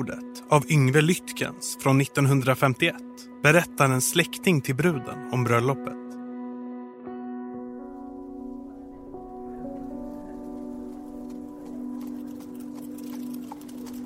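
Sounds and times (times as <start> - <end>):
speech: 0.0 - 6.0
horse hooves clip-clopping pulling a farmer's cart: 9.5 - 14.0.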